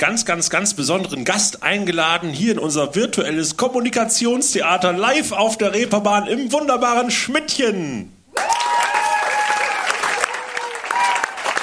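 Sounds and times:
speech: 0:00.0 - 0:08.2
audience at an evening live show clapping: 0:08.3 - 0:11.6
audience voices cheering at an evening live show: 0:08.3 - 0:11.6.

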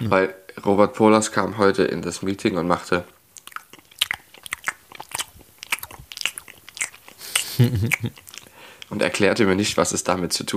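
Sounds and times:
speech: 0:00.0 - 0:03.2, 0:07.6 - 0:08.2, 0:08.9 - 0:10.5
crunching and chewing a hard ginger honey drop: 0:03.4 - 0:08.9
laughter: 0:07.2 - 0:08.2.

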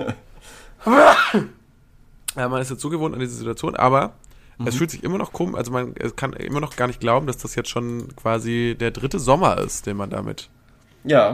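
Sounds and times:
person sneezing forcefully: 0:00.8 - 0:01.6
speech: 0:00.8 - 0:01.6, 0:02.4 - 0:11.3.

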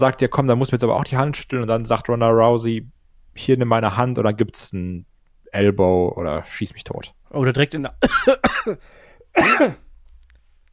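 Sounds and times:
speech: 0:00.0 - 0:09.8
person coughing: 0:08.0 - 0:09.9.

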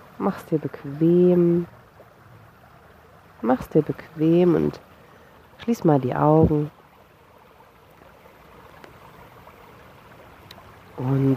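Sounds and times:
rushing of flowing river water: 0:00.0 - 0:11.3
speech: 0:00.2 - 0:01.8, 0:03.4 - 0:04.9, 0:05.6 - 0:06.8, 0:11.0 - 0:11.3
faint clicks and splashes near the water surface: 0:07.7 - 0:09.4, 0:10.2 - 0:11.3.

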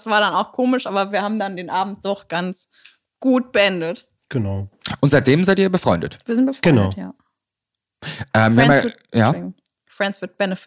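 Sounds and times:
speech: 0:00.0 - 0:07.2, 0:08.0 - 0:10.6
person sneezing: 0:08.0 - 0:09.0.

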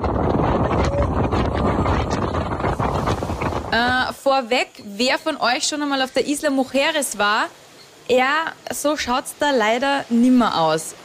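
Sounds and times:
wind buffeting a microphone during a ferry ride to Isla Mujeres: 0:00.0 - 0:04.3
water noise during a ferry ride: 0:00.0 - 0:11.0
speech: 0:03.7 - 0:11.0.

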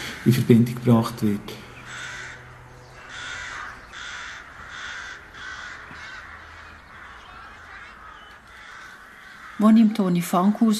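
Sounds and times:
flock of crows cawing: 0:00.0 - 0:00.8, 0:01.5 - 0:10.7
speech: 0:00.2 - 0:01.6, 0:09.6 - 0:10.7.

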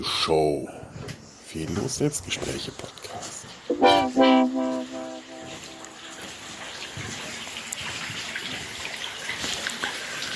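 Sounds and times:
speech: 0:00.0 - 0:00.8, 0:01.5 - 0:03.3
brief tonal sound: 0:03.7 - 0:06.3
water splashing and trickling at a saltworks graduation tower: 0:06.6 - 0:10.3.

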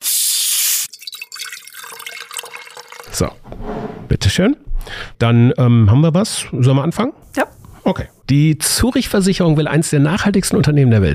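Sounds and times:
sparkling water bubbles fizzing in a glass: 0:00.7 - 0:03.3
sparkling water pouring into a glass: 0:00.8 - 0:03.4
speech: 0:03.1 - 0:11.1.

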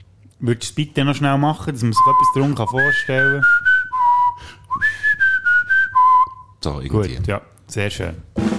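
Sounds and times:
speech: 0:00.4 - 0:03.7, 0:06.6 - 0:08.4
person whistling a short melodic phrase: 0:02.0 - 0:06.6.

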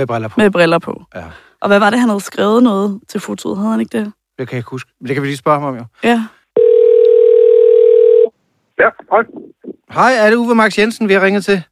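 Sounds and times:
speech: 0:00.0 - 0:06.7, 0:08.8 - 0:11.6
person answering phone: 0:06.6 - 0:08.3
telephone dial tone of an outgoing call from a radio studio: 0:06.6 - 0:08.3.

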